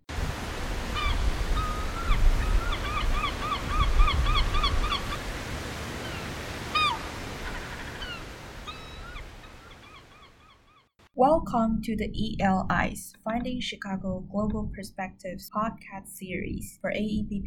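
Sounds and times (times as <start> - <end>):
gulls giving mewing calls in Chicago: 0.8 - 10.9
speech: 11.2 - 17.4.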